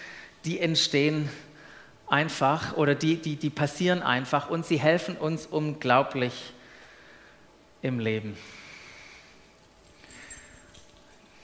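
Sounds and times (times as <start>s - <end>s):
speech: 0.4s - 1.5s, 2.1s - 6.6s, 7.8s - 8.6s
keys on a hammer-shaped keychain jingling: 9.6s - 11.4s.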